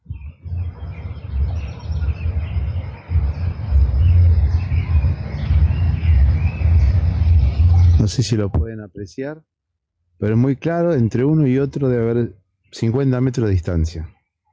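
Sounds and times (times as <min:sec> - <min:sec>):
different birds singing and answering each other in spring: 0:00.0 - 0:08.6, 0:10.2 - 0:14.2
steady low rumble: 0:00.0 - 0:09.1
speech: 0:08.1 - 0:09.6, 0:10.2 - 0:14.2.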